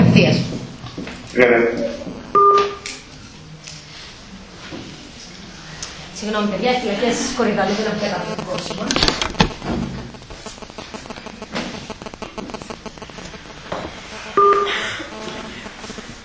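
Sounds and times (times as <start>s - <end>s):
speech: 0.1s - 2.0s, 6.2s - 10.0s
telephone dialing tones while redialing a caller: 8.2s - 16.1s.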